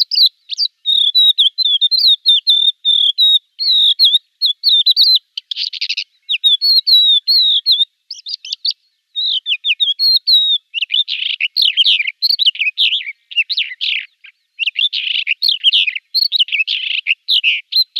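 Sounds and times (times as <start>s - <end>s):
Crested lark song: 0.0s - 17.9s.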